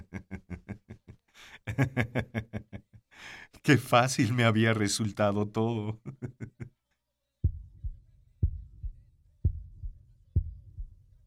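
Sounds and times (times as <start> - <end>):
laughter: 0.0 - 3.0, 5.9 - 6.8
speech: 1.4 - 2.5, 3.6 - 6.2
muffled heartbeat: 7.4 - 11.2.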